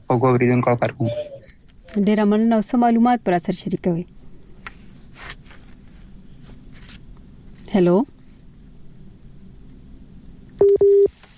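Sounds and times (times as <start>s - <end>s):
speech: 0.1s - 1.4s, 2.0s - 4.2s, 7.8s - 8.2s
telephone busy signal after a phone line was cut: 10.6s - 11.1s.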